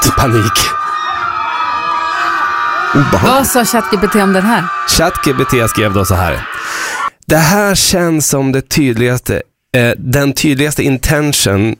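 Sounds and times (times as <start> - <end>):
many children shrieking at once: 0.0 - 7.1
speech: 0.2 - 0.8, 2.9 - 11.7.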